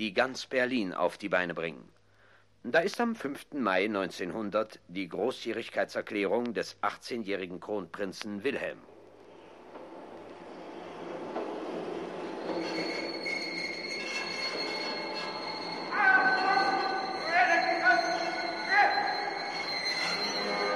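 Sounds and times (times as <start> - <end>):
speech: 0.0 - 2.0, 2.6 - 8.9, 12.6 - 13.0
imperial court train rolling into Potsdamer Bahnhof in Berlin: 9.2 - 20.7
train wheels and brakes squealing shrilly: 9.2 - 20.7.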